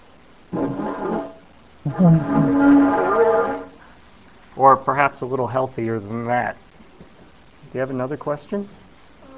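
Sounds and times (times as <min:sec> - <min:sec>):
deep mournful horn-like blasts blown by a person into a replica Parasaurolophus skull crest: 0:00.5 - 0:03.8
speech: 0:01.8 - 0:03.0, 0:04.6 - 0:06.6, 0:07.7 - 0:08.8.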